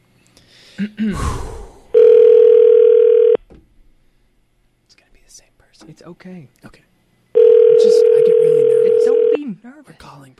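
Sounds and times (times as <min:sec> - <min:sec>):
speech: 0:00.8 - 0:01.5, 0:06.0 - 0:06.9, 0:09.0 - 0:10.3
telephone dial tone humming: 0:02.0 - 0:03.4, 0:07.4 - 0:09.4.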